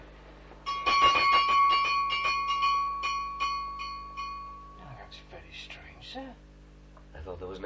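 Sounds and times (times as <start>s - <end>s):
servant call bell ringing: 0.7s - 5.0s.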